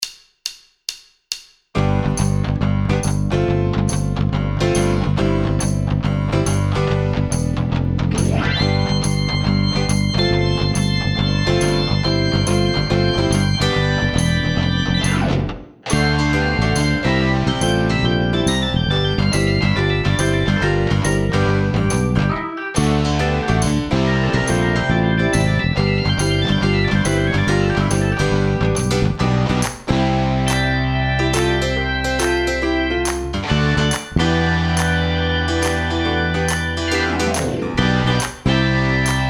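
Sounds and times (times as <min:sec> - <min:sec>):
rock shuffle backing track: 0:01.8 - 0:39.2.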